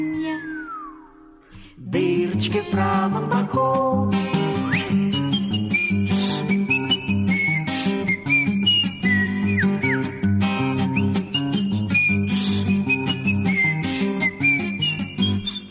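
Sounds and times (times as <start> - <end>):
whistled melody of a children's song: 0.0 - 1.4, 4.5 - 15.6
speech: 1.9 - 4.3
steady instrumental backing music: 2.9 - 15.6.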